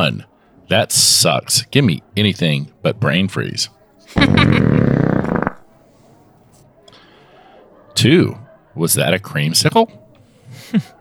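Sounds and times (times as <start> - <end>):
speech: 0.0 - 4.8, 8.0 - 10.9
laughter: 4.0 - 5.6, 10.4 - 10.9
loud drawn-out rumbling belch: 4.2 - 5.6.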